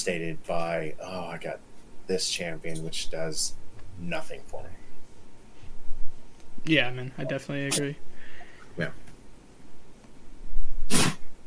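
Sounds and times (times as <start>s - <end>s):
speech: 0.0s - 4.8s, 6.6s - 8.1s, 8.8s - 9.1s
dog sneezing during play-fighting: 10.9s - 11.3s.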